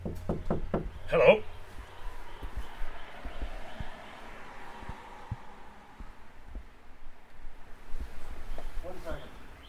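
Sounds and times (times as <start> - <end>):
knocking on an apartment door: 0.0 - 1.0
faint scattered thumps: 0.0 - 7.2.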